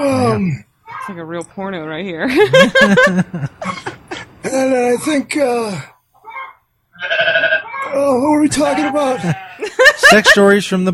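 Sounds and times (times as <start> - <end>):
speech: 0.0 - 3.8, 4.6 - 5.9, 7.9 - 10.9
laughter: 2.2 - 4.6, 8.5 - 10.7
goat bleating in a barn: 6.2 - 9.6.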